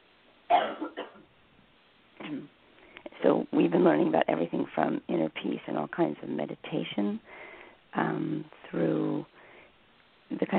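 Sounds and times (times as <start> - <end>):
person clearing throat in rough bursts: 0.5 - 1.2
speech: 3.8 - 9.4, 10.3 - 10.5.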